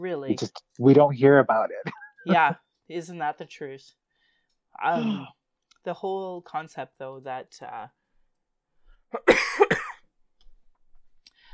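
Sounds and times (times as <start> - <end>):
speech: 0.0 - 4.0, 4.8 - 8.0, 9.1 - 9.7
person with a lingering cough coughing: 4.9 - 5.4, 9.1 - 10.0.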